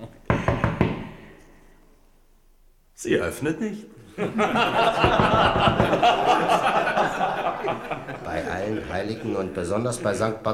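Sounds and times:
firm knocks on a wooden door: 0:00.3 - 0:01.2, 0:05.0 - 0:06.1
speech: 0:03.0 - 0:10.5
laughter: 0:04.0 - 0:10.4.

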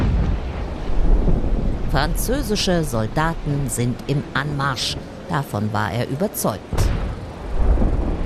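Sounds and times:
deep heavy rumbling boom: 0:00.0 - 0:01.9, 0:06.7 - 0:08.2
speech: 0:01.9 - 0:06.8.

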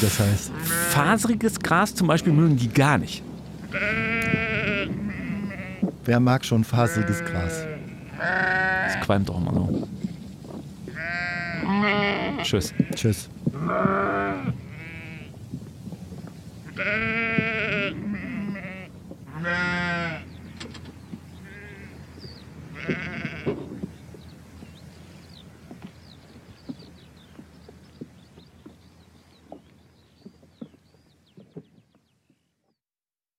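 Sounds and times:
speech: 0:00.0 - 0:04.0, 0:06.1 - 0:10.0, 0:11.7 - 0:14.6
sheep bleating: 0:00.4 - 0:01.1, 0:03.6 - 0:05.9, 0:06.7 - 0:09.1, 0:10.9 - 0:13.0, 0:13.6 - 0:15.3, 0:16.7 - 0:20.3, 0:21.4 - 0:22.0, 0:22.7 - 0:23.6.

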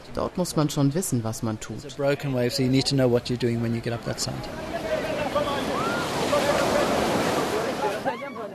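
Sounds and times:
speech: 0:00.2 - 0:04.8
ocean surf roaring at a southern surf beach: 0:01.8 - 0:08.5.

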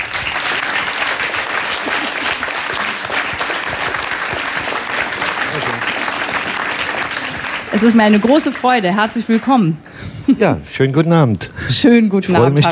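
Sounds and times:
large audience applause welcoming a guest: 0:00.0 - 0:10.1
speech: 0:07.8 - 0:12.7.

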